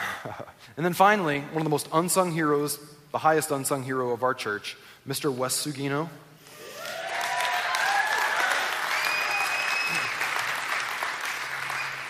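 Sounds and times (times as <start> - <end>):
speech: 0.2 - 6.3
cheers and whoops: 6.5 - 10.5
large crowd applauding: 6.7 - 12.0.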